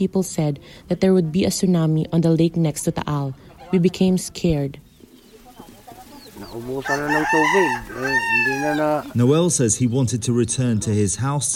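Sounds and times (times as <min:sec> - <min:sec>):
speech: 0:00.0 - 0:04.8, 0:06.4 - 0:11.5
fighting cock in the Philippines crowing: 0:06.2 - 0:09.2.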